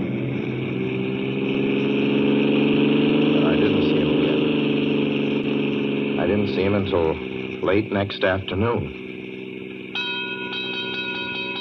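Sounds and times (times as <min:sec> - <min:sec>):
train droning hum passing a small junction in Oklahoma: 0:00.0 - 0:11.5
speech: 0:06.6 - 0:09.0
train whistle-like tones: 0:09.9 - 0:11.5.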